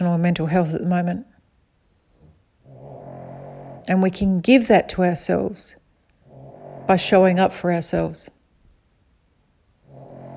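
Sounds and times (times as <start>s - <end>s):
speech: 0.2s - 1.3s, 3.9s - 5.8s, 6.9s - 8.4s
dog snoring: 2.0s - 4.2s, 6.2s - 8.0s, 9.8s - 10.3s.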